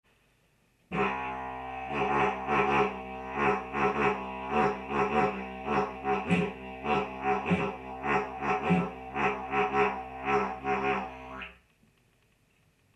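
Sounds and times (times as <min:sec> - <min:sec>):
rhythmic didgeridoo drone pulsed with the diaphragm: 0:00.9 - 0:11.6
coughing into a didgeridoo while droning: 0:01.9 - 0:11.2.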